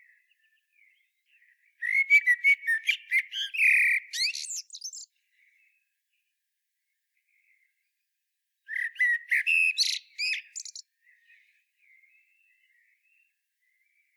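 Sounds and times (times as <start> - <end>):
common blackbird Turdus merula singing: 0.0 - 5.8, 8.7 - 14.1.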